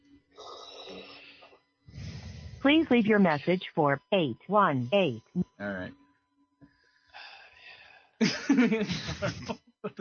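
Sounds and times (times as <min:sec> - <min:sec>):
quiet breath intake: 0:00.4 - 0:02.8, 0:06.6 - 0:08.2
heavy raspy exhale with a throaty rattle: 0:01.4 - 0:02.6
speech: 0:02.6 - 0:06.0, 0:08.2 - 0:09.9
laughter: 0:08.2 - 0:09.9.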